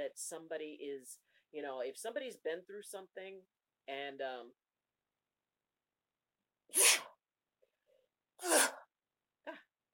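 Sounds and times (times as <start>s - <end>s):
speech: 0.1s - 4.6s, 6.7s - 7.1s
person sneezing: 6.7s - 7.2s, 8.4s - 8.9s.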